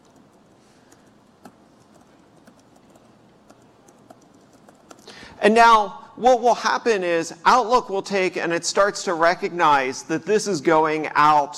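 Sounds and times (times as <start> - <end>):
computer keyboard typing: 0.0 - 5.2
speech: 5.4 - 11.5.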